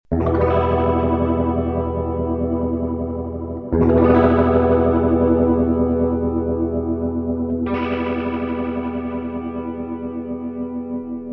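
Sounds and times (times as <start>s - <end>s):
clean electric guitar: 0.1s - 11.3s.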